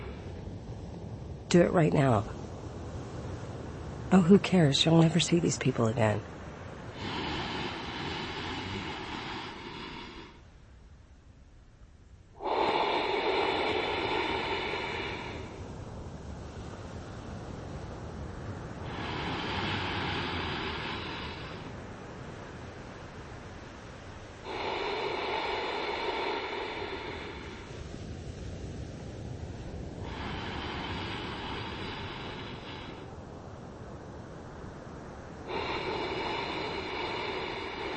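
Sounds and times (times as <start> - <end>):
slow throaty Ujjayi ocean breaths through the nose with contracted throat: 0.0 - 0.4, 6.9 - 10.5, 12.4 - 15.7, 18.8 - 21.8, 24.2 - 28.5, 30.0 - 33.2, 35.4 - 37.9
speech: 1.5 - 2.4, 4.1 - 6.3.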